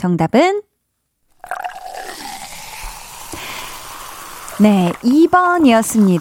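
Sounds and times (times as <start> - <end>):
speech: 0.0 - 0.7, 4.6 - 6.2
cola pouring into a cup of ice: 1.3 - 6.2
crackling fizz of cola: 1.3 - 6.2
ice clinking in a cup: 1.3 - 6.2.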